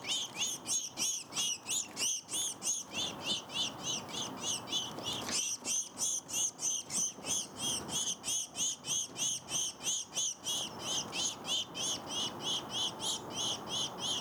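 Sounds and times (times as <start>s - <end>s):
House sparrow Passer domesticus chirping: 0.0s - 14.1s.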